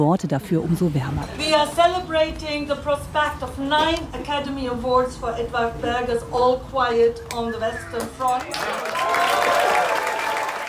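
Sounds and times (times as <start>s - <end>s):
speech: 0.0s - 9.6s
crowd applauding: 8.0s - 10.6s.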